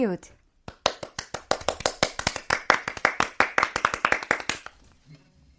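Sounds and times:
speech: 0.0s - 0.4s
small group clapping hands: 0.6s - 4.8s.

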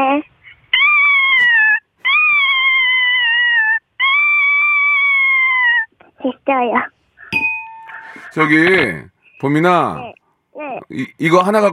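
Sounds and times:
elementary school third-grader imitating the cry of a starving kitten: 0.0s - 6.9s
speech: 6.5s - 7.4s, 8.3s - 10.2s, 10.8s - 11.7s.

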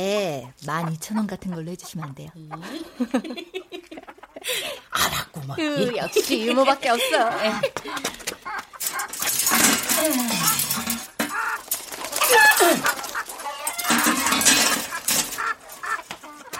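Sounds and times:
speech: 0.0s - 3.7s, 4.4s - 8.1s, 10.0s - 10.8s, 12.3s - 13.0s
several chickens clucking and squawking in a coop: 0.0s - 16.5s
laughter: 2.6s - 8.7s
chickens flapping and rustling: 7.7s - 16.5s.

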